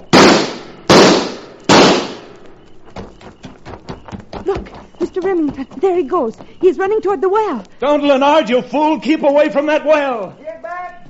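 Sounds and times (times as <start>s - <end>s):
gunshots: 0.0s - 2.4s
speech: 4.4s - 10.4s.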